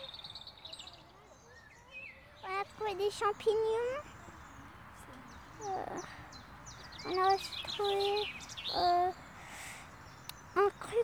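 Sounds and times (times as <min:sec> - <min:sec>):
quiet outdoor noise: 0:00.0 - 0:11.0
soft rapid faint bird chirps: 0:02.4 - 0:11.0
speech: 0:02.8 - 0:04.1, 0:05.6 - 0:06.2, 0:07.0 - 0:09.2, 0:10.6 - 0:11.0.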